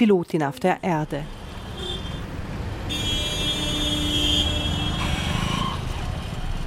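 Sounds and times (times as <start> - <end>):
speech: 0.0 - 1.4
steady rumble of busy city traffic: 0.0 - 6.6
taxi car horn honking in chaotic capital city traffic: 1.6 - 2.3, 2.9 - 5.8.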